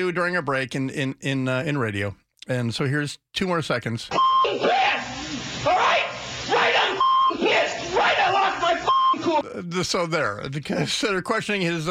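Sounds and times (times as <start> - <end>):
speech: 0.0 - 6.0, 9.4 - 11.9
short flat censor beeps: 4.2 - 4.5, 7.0 - 7.4, 8.9 - 9.2
loud excited voices from a recording: 4.2 - 9.5.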